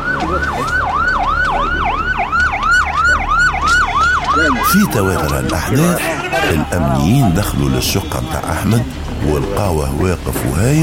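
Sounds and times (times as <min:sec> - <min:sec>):
police car siren yelping in Alexandria: 0:00.0 - 0:07.7
speech: 0:04.4 - 0:10.8.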